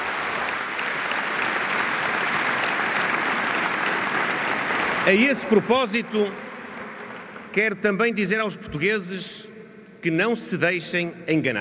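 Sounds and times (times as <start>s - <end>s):
large congress audience applauding: 0.0s - 7.6s
speech: 5.0s - 6.4s, 7.6s - 11.5s.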